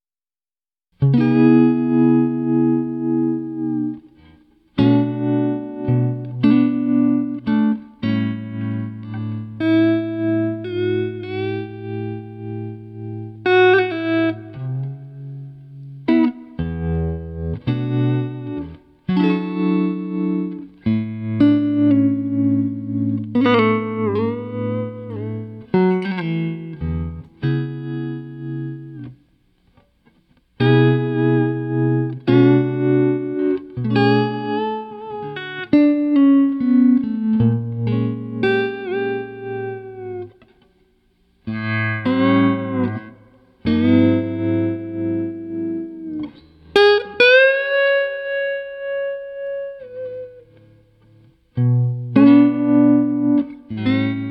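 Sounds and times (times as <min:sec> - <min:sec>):
chill electric guitar playing: 0:01.0 - 0:54.2.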